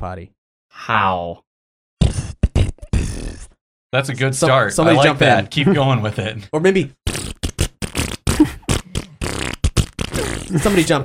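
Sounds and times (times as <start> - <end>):
speech: 0.0 - 1.5, 3.9 - 7.3, 10.5 - 11.0
buzzy mouth-made fart noises as a beat for a rap: 2.0 - 3.6, 7.0 - 11.0.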